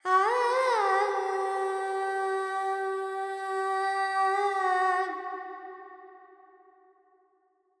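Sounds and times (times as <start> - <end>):
female Carnatic alap vocals in Panthuvarali with reverb: 0.0 - 6.0.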